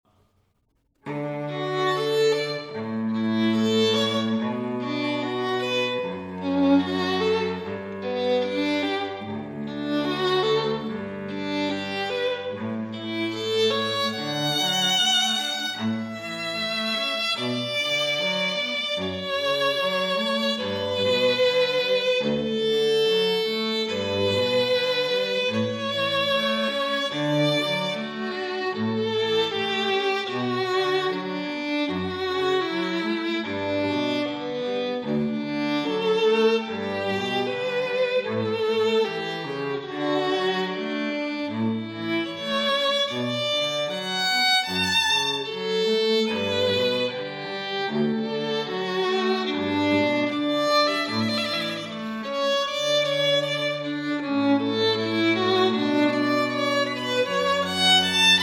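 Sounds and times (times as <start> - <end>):
cello: 1.0 - 58.4
violin: 1.0 - 58.4.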